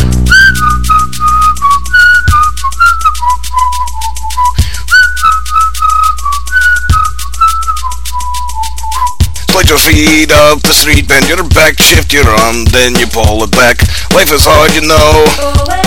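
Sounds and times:
clear whistled melody in a song: 0.0s - 11.4s
steady backing beat and bass: 0.0s - 15.8s
sharp percussive hits: 9.0s - 15.8s
speech: 9.9s - 15.8s.

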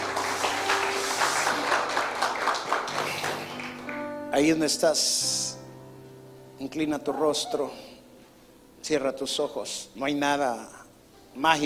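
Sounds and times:
audience applauding: 0.0s - 4.1s
speech: 4.4s - 5.4s, 6.6s - 7.9s, 8.9s - 10.8s, 11.4s - 11.6s.

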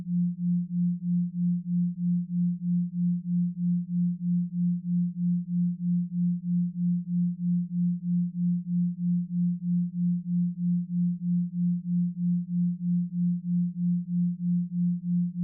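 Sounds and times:
low pure tone near 174 Hz pulsing from a 3.14 Hz binaural beat: 0.0s - 15.4s.

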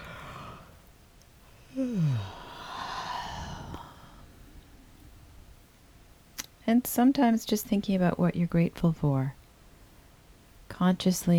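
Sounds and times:
breathy exhaling: 0.0s - 0.9s, 1.5s - 4.6s
person yawning: 1.7s - 4.2s
speech: 6.7s - 9.4s, 10.8s - 11.3s.

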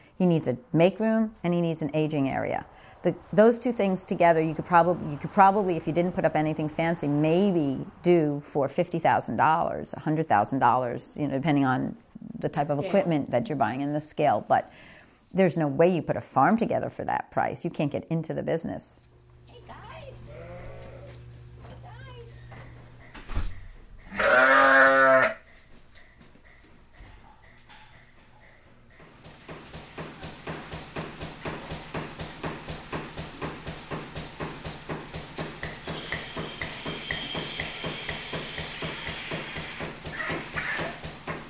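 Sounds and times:
speech: 0.2s - 19.1s
milking pump compressor chugging in a rhythmic beat: 19.1s - 41.4s
sheep bleating in an indoor milking parlor: 20.2s - 21.2s, 24.1s - 25.4s.

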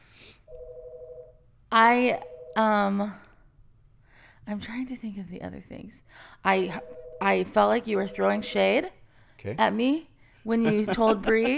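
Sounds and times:
phone ringing: 0.5s - 1.4s, 2.0s - 2.8s, 6.7s - 8.8s
speech: 1.8s - 3.2s, 4.5s - 11.5s
laughter: 10.5s - 11.5s.

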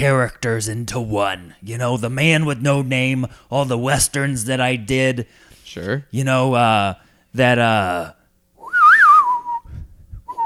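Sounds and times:
speech: 0.0s - 8.2s
person whistling a western-movie style tune: 8.6s - 10.4s.

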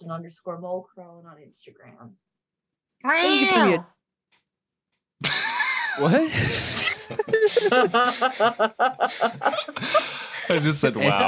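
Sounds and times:
speech: 0.0s - 2.3s, 3.0s - 4.0s, 6.0s - 11.2s
person imitating a cat's meow: 3.1s - 3.8s
laughter: 5.2s - 11.2s.

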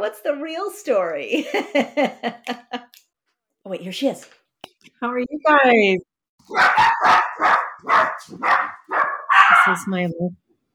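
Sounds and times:
speech: 0.0s - 7.2s, 7.9s - 8.6s, 9.6s - 10.4s
laughter: 1.4s - 3.0s
several dogs yipping and barking: 6.4s - 9.9s.

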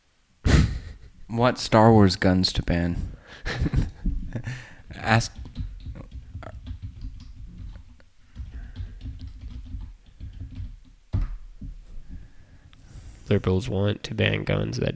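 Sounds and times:
speech: 1.3s - 3.8s, 4.4s - 5.4s, 13.3s - 14.9s
typing on a computer keyboard: 5.2s - 11.4s.

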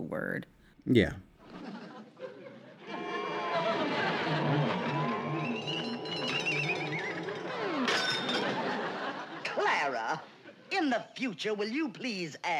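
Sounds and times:
speech: 0.1s - 1.3s, 9.8s - 12.5s
laughter: 0.9s - 10.5s
teacup crashing and shattering on the floor: 7.8s - 8.8s.

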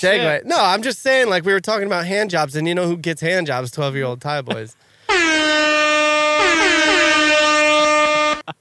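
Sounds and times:
speech: 0.0s - 5.7s
loud sustained air horn blast with stacked harmonics: 5.1s - 8.5s.

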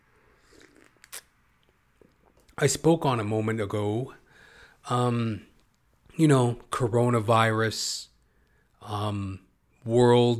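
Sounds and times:
slurping sip of coffee: 0.2s - 2.6s
soft mouth and swallowing noises: 0.4s - 2.6s
speech: 2.6s - 4.2s, 4.9s - 5.5s, 6.2s - 8.1s, 8.8s - 10.3s.

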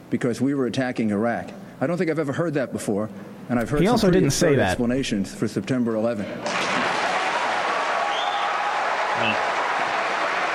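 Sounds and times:
speech: 0.1s - 6.8s
audience applause at a political debate: 6.5s - 10.5s.

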